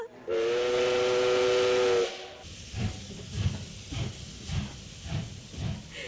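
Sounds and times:
loud sustained steam whistle blowing: 0.3 - 2.5
hissing rush of steam: 0.3 - 6.0.

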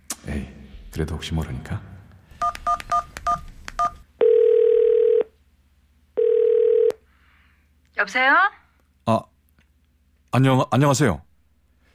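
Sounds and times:
speech: 0.3 - 1.9, 8.0 - 9.3, 10.4 - 11.3
telephone keypad tones dialing a phone number: 2.4 - 5.2.

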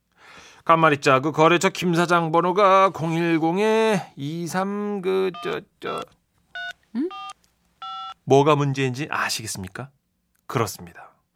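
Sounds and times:
speech: 0.7 - 6.2, 8.3 - 11.1
telephone keypad dialing tones: 6.6 - 8.2.

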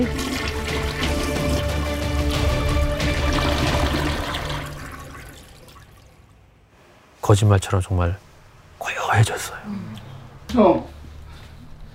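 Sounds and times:
toilet flushing: 0.0 - 6.4
speech: 7.3 - 11.0.

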